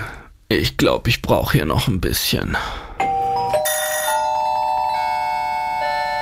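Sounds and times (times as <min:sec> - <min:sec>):
speech: 0:00.5 - 0:02.9
electronic doorbell chime: 0:03.0 - 0:06.2.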